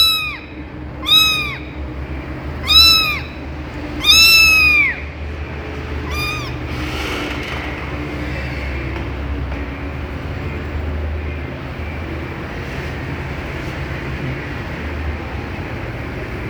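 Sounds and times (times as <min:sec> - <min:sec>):
kitten meowing in an office: 0:00.0 - 0:01.9, 0:02.6 - 0:05.1, 0:06.0 - 0:06.7
steady low hum: 0:00.0 - 0:16.4.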